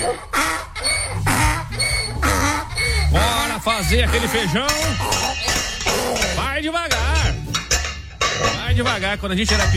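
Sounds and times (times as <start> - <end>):
donkey braying: 0.0 - 9.7
speech: 3.7 - 5.5, 6.6 - 7.2, 8.7 - 9.7.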